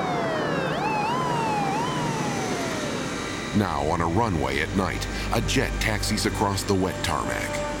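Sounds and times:
ambulance siren wailing: 0.0 - 3.8
speech: 3.6 - 7.7.

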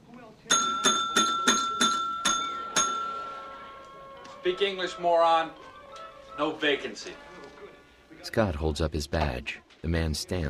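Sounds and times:
front desk service bell struck in a dingy lobby: 0.5 - 3.6
speech: 4.4 - 5.7, 6.4 - 7.3, 8.2 - 10.4.

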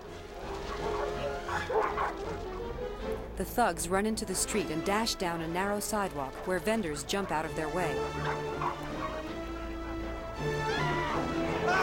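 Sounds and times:
mixed pack of hounds and terriers barking and yipping while chasing: 0.0 - 3.1, 5.4 - 11.6
speech: 3.4 - 8.9.

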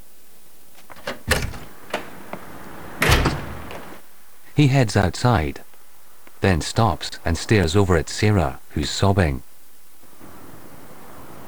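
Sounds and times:
glass door being opened: 0.8 - 4.0
speech: 4.6 - 5.7, 6.4 - 9.5.

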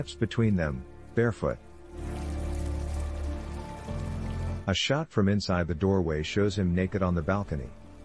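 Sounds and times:
speech: 0.0 - 2.2, 4.7 - 7.8
rain falling into buckets on a balcony: 0.0 - 4.7
rain streaming down window glass: 1.1 - 4.7.

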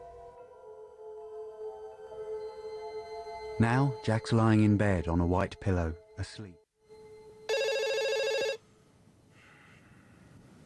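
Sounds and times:
speech: 3.6 - 6.6
electronic telephone ringing beside a bed: 6.9 - 8.6.

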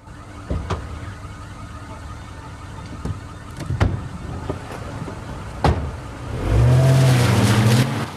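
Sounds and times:
car engine idling then revving and accelerating away: 6.2 - 8.1.

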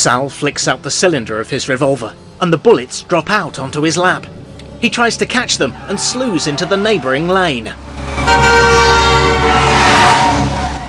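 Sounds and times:
speech: 0.0 - 9.7
engine rumble: 0.0 - 10.8
traffic noise: 0.0 - 10.8
oncoming cars braking: 0.7 - 10.8
car skidding: 5.0 - 10.8
car horn blaring: 7.9 - 10.8.

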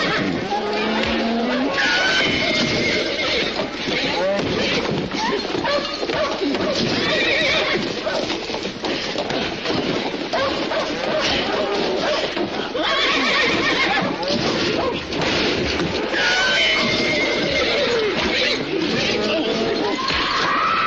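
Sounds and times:
hooves clattering: 0.0 - 20.8
horses neighing in alarm: 0.0 - 20.8.

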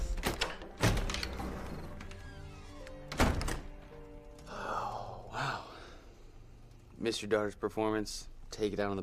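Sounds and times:
front door being opened with hollow thunks and knocks: 0.1 - 1.9, 3.1 - 3.8
speech: 7.1 - 9.0.

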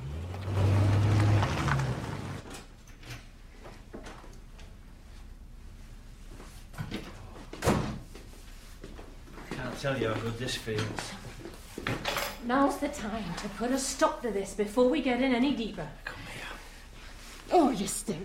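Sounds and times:
car engine rumbling as the car drives off: 0.0 - 2.5
speech: 9.8 - 11.3, 12.5 - 16.1, 17.8 - 18.2.

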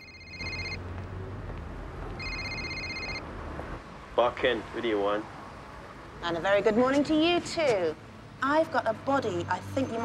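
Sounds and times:
mobile phone high electronic ringtone: 0.0 - 0.8, 2.2 - 3.2
speech: 4.2 - 5.4, 6.2 - 10.0.

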